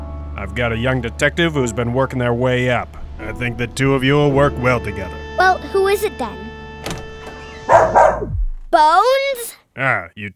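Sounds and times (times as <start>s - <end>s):
speech: 0.4s - 6.5s, 8.8s - 10.3s
dog barking: 7.6s - 8.4s.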